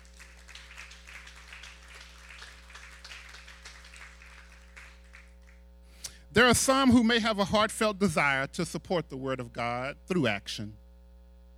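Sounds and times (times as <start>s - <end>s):
audience clapping hands in thanks: 0.0s - 5.6s
low constant hum: 0.0s - 11.5s
speech: 6.4s - 10.8s.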